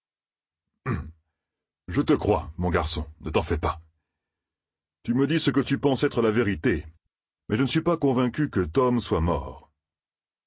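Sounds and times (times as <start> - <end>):
man clearing his throat: 0.8 - 1.2
speech: 1.9 - 3.8, 5.0 - 9.6.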